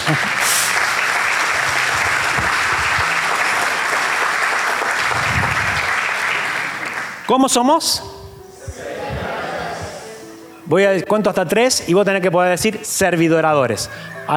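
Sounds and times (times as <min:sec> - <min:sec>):
audience applauding: 0:00.0 - 0:07.4
speech: 0:00.1 - 0:00.6, 0:07.3 - 0:08.1, 0:10.7 - 0:14.3.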